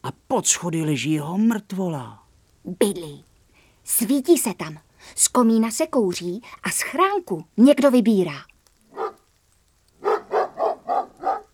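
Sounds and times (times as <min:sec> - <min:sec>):
speech: 0:00.1 - 0:03.3, 0:03.9 - 0:08.5
dog barking: 0:08.9 - 0:09.2, 0:10.0 - 0:11.5.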